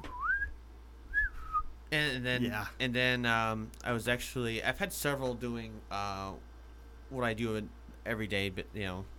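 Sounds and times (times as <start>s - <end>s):
short two-part attention-getting whistle: 0.0s - 0.5s
speech: 1.9s - 6.5s, 7.1s - 9.1s.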